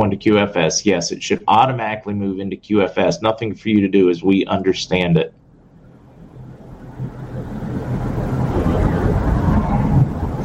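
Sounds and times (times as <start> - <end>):
speech: 0.1 - 5.4
distant rolling thunder from a thunderstorm: 5.8 - 10.4.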